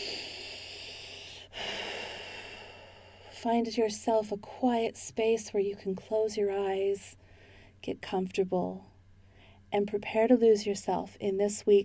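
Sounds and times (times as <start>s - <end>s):
deep breath in through the nose and out through the mouth: 0.0s - 3.4s, 7.2s - 7.8s, 9.2s - 9.7s
speech: 3.4s - 7.2s, 7.8s - 8.9s, 9.7s - 11.8s.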